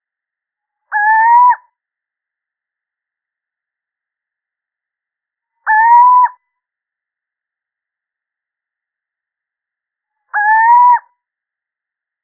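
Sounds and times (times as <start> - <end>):
male little owl hooting: 0.9 - 1.6, 5.6 - 6.4, 10.3 - 11.1.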